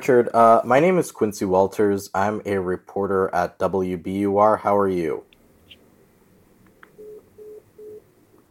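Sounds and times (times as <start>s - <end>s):
speech: 0.0s - 5.3s
phone line disconnect tone after hang-up: 7.0s - 8.0s.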